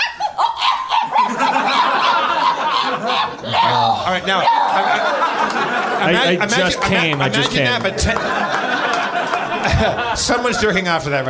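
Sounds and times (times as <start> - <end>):
voice imitating a small dog's high-pitched yelps: 0.0 - 5.3
laughter: 1.0 - 11.2
speech: 4.1 - 8.6, 9.6 - 11.2.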